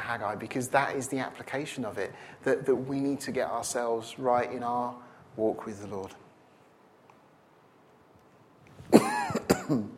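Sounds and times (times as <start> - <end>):
speech: 0.1 - 6.2, 8.9 - 9.9
person coughing harshly: 8.9 - 9.9.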